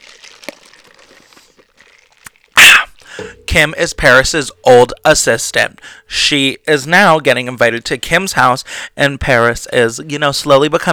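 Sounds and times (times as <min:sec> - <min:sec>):
crinkly rustling: 0:00.0 - 0:02.6
sipping a drink with soft slurping: 0:00.0 - 0:06.2
speech: 0:03.2 - 0:10.9.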